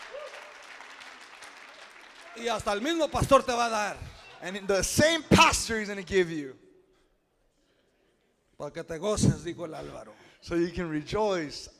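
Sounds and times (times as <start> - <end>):
audience applause: 0.0 - 3.5
speech: 2.4 - 6.6, 8.6 - 11.7.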